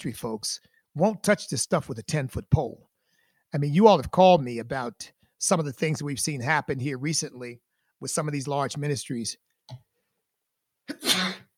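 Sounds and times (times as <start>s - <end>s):
speech: 0.0s - 2.9s, 3.5s - 9.9s
sneeze: 10.9s - 11.5s.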